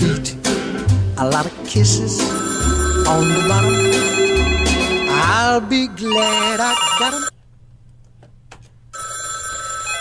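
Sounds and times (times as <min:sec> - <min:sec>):
speech: 0:01.2 - 0:04.3, 0:05.2 - 0:07.3
telephone bell ringing in a metallic trill: 0:02.1 - 0:07.3, 0:09.0 - 0:09.9.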